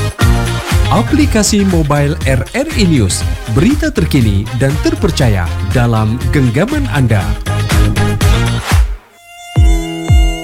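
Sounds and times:
speech: 0:01.0 - 0:08.3
high-pitched mosquito whine: 0:07.9 - 0:10.4.

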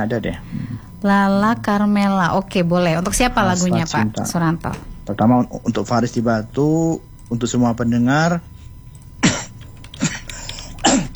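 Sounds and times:
speech: 0:00.0 - 0:08.5
person coughing: 0:09.2 - 0:11.1.

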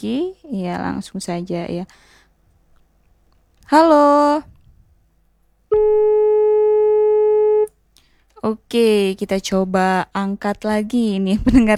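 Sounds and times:
speech: 0:00.0 - 0:02.2, 0:03.7 - 0:04.6, 0:08.4 - 0:11.7
telephone line buzzing tone after a dropped call: 0:05.7 - 0:07.7.

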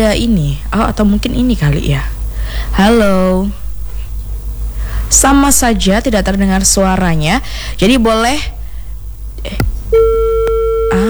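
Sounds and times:
speech: 0:00.0 - 0:03.6, 0:05.1 - 0:08.6, 0:09.4 - 0:10.1
telephone line tone after a call disconnects: 0:09.9 - 0:11.0.

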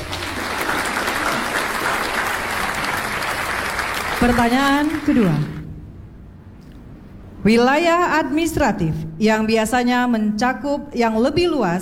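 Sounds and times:
audience applause: 0:00.0 - 0:05.6
speech: 0:04.2 - 0:05.6, 0:07.4 - 0:11.8.

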